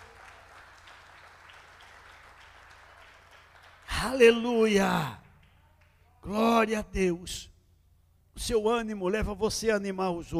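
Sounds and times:
audience applauding at night: 0.0 - 4.8
speech: 4.0 - 5.2, 6.3 - 7.5, 8.4 - 10.3.

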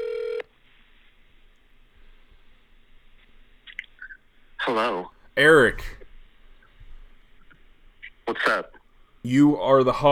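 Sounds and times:
outgoing phone call ringing tone: 0.0 - 0.5
faint telephone-line hiss: 0.0 - 0.9
speech: 4.7 - 6.0, 8.3 - 10.0.

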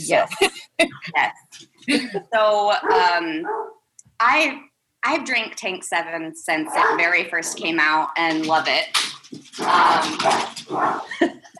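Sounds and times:
speech: 0.0 - 11.5
dogs barking and yelping excitedly: 2.8 - 3.8, 6.6 - 7.8, 9.4 - 11.4.

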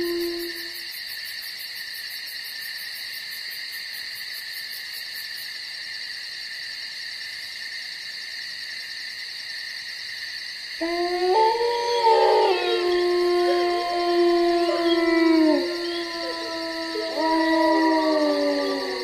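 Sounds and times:
wolves howling in a forest: 0.0 - 0.8, 10.8 - 19.0
crickets and insects trilling at night: 0.0 - 19.0.

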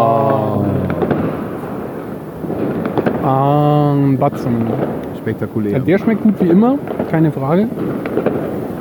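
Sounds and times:
firework fountain burning as a flame pyramid: 0.2 - 8.7
firework fountain pops: 0.8 - 1.7, 2.4 - 3.4, 4.4 - 5.2, 6.0 - 8.7
speech: 4.3 - 8.6.

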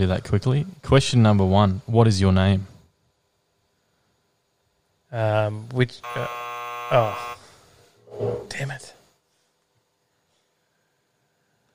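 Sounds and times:
speech: 0.0 - 2.7, 5.1 - 7.4, 8.1 - 9.0
voice imitating a game show buzzer in answer to a quiz question: 6.0 - 7.5.

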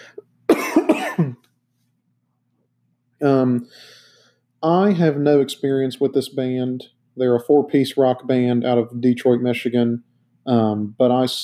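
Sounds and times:
person coughing: 0.5 - 1.4
speech: 3.2 - 4.0, 4.6 - 11.4.

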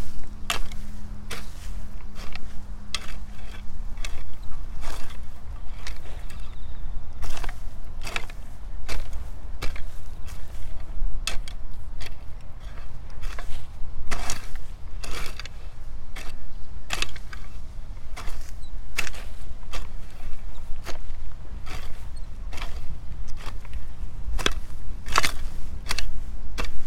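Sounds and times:
hoe scraping soil between carrot rows: 0.0 - 26.8
shears cutting weeds between carrot rows: 0.0 - 26.8.

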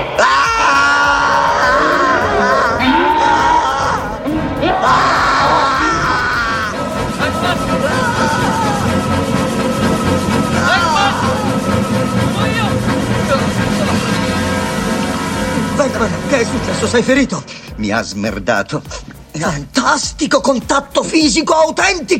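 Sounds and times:
several people screaming and yelling frantically in a film scene: 0.0 - 14.6
dense chaotic noise: 0.0 - 22.1
speech: 16.9 - 22.1.

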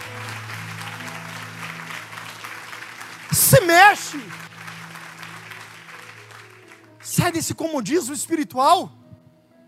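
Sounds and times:
crowd applauding: 0.0 - 7.9
man preaching loudly: 3.3 - 4.4, 7.0 - 9.0
speech: 3.3 - 4.4, 7.2 - 9.0.

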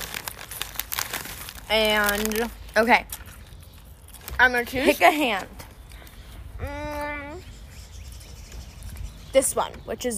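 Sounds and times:
plastic apple candy wrappers crinkling and rustling: 0.0 - 6.2
speech: 1.7 - 3.2, 4.4 - 5.6, 9.3 - 10.1.

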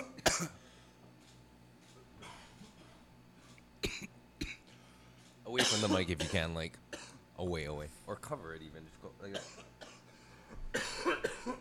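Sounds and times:
person coughing: 0.0 - 0.7, 2.2 - 3.0, 3.8 - 4.8, 5.6 - 7.2, 9.3 - 11.6
speech: 0.4 - 0.6, 5.5 - 6.8, 7.4 - 9.8.

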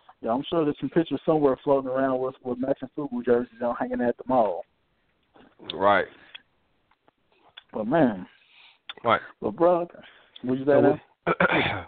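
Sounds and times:
speech: 0.2 - 4.7, 5.4 - 6.2, 7.7 - 8.4, 9.0 - 11.8
person with a cold clearing throat: 11.2 - 11.8
person with a cold coughing: 11.2 - 11.8.

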